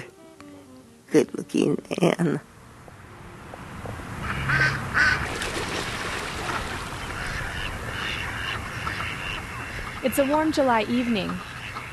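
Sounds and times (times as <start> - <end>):
speech: 1.1 - 2.5, 10.0 - 11.5
ducks quacking at a pond: 4.2 - 5.3, 6.3 - 11.9.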